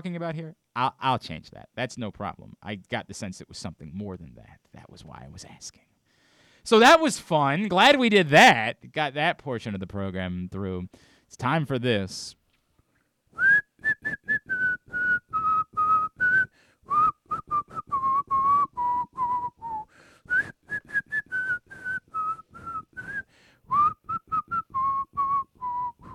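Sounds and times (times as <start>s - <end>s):
speech: 0.0s - 5.9s, 6.6s - 12.4s
person whistling a lively tune: 13.4s - 26.1s.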